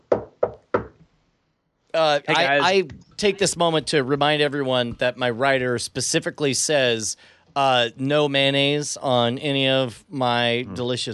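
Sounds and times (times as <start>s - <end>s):
knocking on the door of a cell in a dungeon-like holding room: 0.0s - 1.0s
speech: 2.0s - 11.1s.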